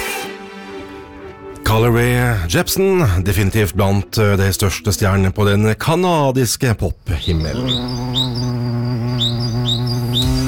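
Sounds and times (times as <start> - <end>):
speech: 1.7 - 9.5
bright rising bird chirps: 7.1 - 10.4
dense humming drone of summer insects: 7.1 - 10.4.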